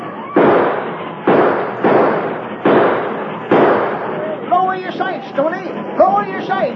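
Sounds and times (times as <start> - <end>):
gunshots during a chase: 0.2 - 5.2
people shouting excitedly: 4.0 - 6.7.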